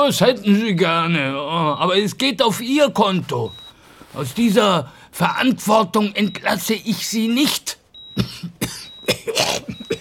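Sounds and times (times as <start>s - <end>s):
speech: 0.0s - 7.8s
harsh coughing fit: 8.1s - 9.9s.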